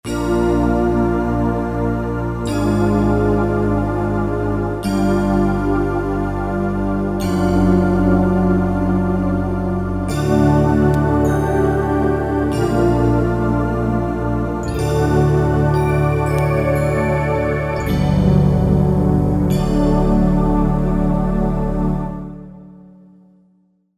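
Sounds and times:
synth pad: 0:00.1 - 0:22.8.

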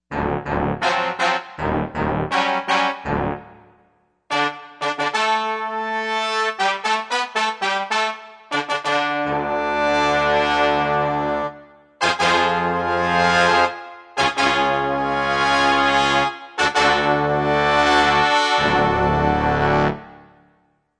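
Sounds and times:
Yamaha TG55 synthesizer orchestral brass factory preset: 0:00.1 - 0:20.5.

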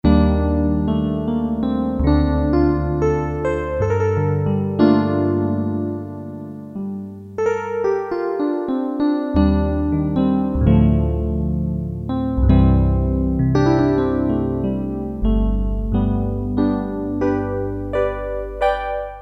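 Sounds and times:
E.Piano preset on Korg DSS-1 DWGS synthesizer: 0:00.0 - 0:19.1.

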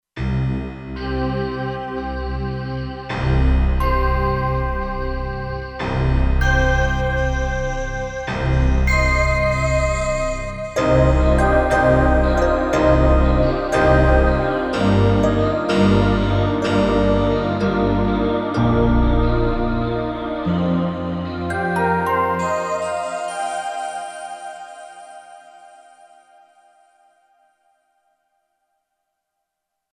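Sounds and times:
dual synth on Kurzweil K2500X: 0:00.2 - 0:26.8.

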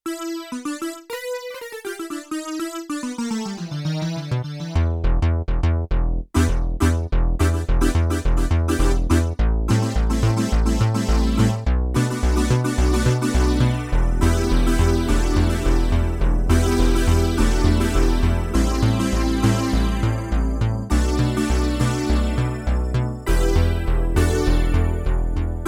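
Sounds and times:
synth bandstand music on a Yamaha TX16W: 0:00.0 - 0:25.6.

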